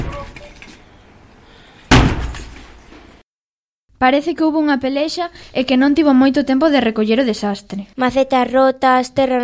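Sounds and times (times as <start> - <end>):
house door forced open with a crash: 0.0 - 0.7, 1.9 - 3.1
speech: 4.0 - 9.4.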